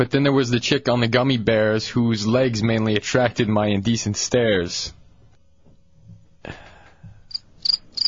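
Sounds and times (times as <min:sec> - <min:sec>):
speech: 0:00.0 - 0:05.0, 0:06.4 - 0:06.6
cricket sound effect chirping: 0:07.3 - 0:08.0.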